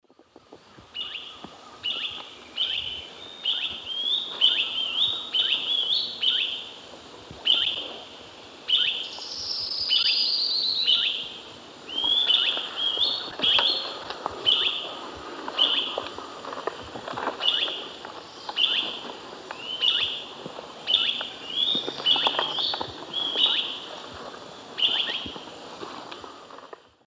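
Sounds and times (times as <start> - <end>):
Conopias parvus call: 0.9 - 6.7, 7.4 - 8.0, 8.7 - 16.2, 17.2 - 24.0, 24.8 - 25.4.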